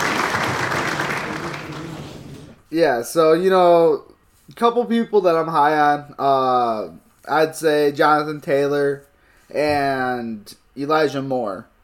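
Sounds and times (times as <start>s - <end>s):
crowd clapping: 0.0s - 2.6s
speech: 2.7s - 11.7s.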